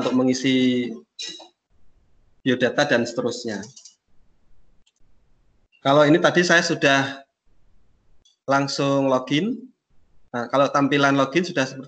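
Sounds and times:
speech: 0.0s - 1.5s, 2.4s - 3.8s, 5.8s - 7.2s, 8.5s - 9.7s, 10.3s - 11.8s
computer mouse clicks while registering an account on a website: 3.6s - 4.0s, 4.8s - 5.1s.

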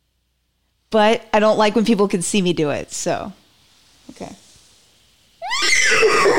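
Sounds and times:
speech: 0.9s - 3.4s, 4.1s - 4.4s
person imitating a horse neigh: 5.4s - 6.3s.

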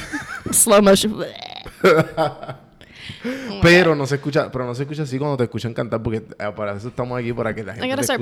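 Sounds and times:
speech: 0.5s - 8.1s
loud croaky burp after sipping a fizzy drink: 1.3s - 1.9s.

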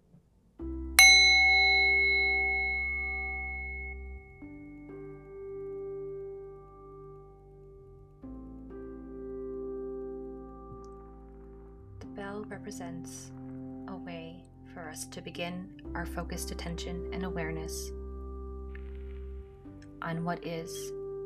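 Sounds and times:
meditation bell struck to begin meditation practice: 1.0s - 4.8s
speech: 12.4s - 13.4s, 14.9s - 18.0s, 20.0s - 21.0s.

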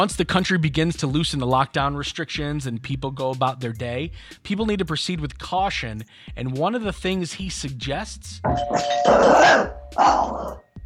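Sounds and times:
speech: 0.0s - 10.6s
doorbell chiming: 8.5s - 10.5s.

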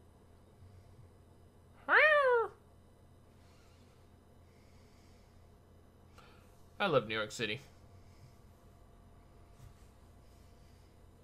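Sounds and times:
cat meow: 1.8s - 2.6s
speech: 6.8s - 7.7s.

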